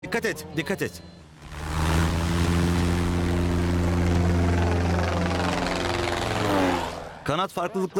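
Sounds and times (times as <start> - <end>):
speech: 0.1 - 1.5, 7.3 - 7.9
airplane engine droning in flight during a training flight after takeoff: 1.4 - 7.3.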